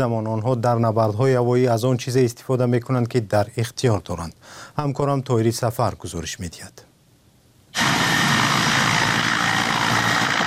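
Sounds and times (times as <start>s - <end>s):
speech: 0.0s - 6.9s
Mi-8 military helicopter armed with unguided rockets roaring: 7.8s - 10.4s.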